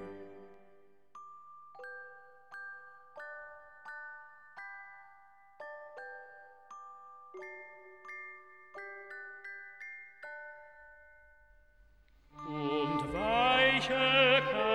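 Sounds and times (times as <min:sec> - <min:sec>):
church carillon chiming a slow melody: 0:00.0 - 0:14.6.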